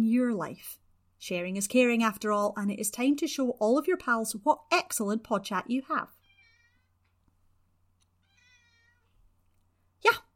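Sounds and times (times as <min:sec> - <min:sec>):
speech: 0:00.1 - 0:06.2, 0:10.0 - 0:10.2
cat meowing: 0:06.2 - 0:06.9, 0:08.2 - 0:09.2.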